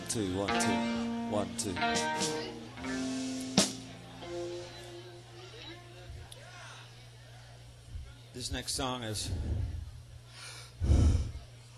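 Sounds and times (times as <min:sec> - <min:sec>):
speech: 0:00.1 - 0:03.1, 0:08.4 - 0:09.8
heavy breathing into the microphone: 0:09.2 - 0:11.5.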